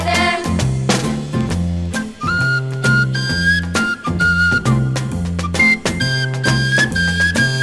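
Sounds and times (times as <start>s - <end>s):
steady rhythmic musical backing: 0.0s - 7.6s
flute playing a bright clear melody: 1.9s - 7.6s.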